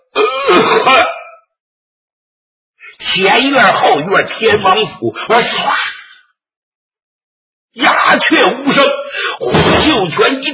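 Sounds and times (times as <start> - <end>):
person clearing throat imitating a ruler's cough: 0.0 - 1.5
speech: 0.6 - 1.1, 3.1 - 6.0, 8.2 - 9.0, 9.9 - 10.5.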